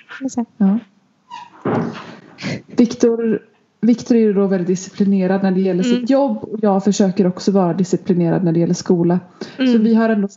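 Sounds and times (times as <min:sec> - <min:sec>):
speech: 0:00.2 - 0:01.0, 0:01.7 - 0:10.3
door or cupboard creaking: 0:01.3 - 0:02.6.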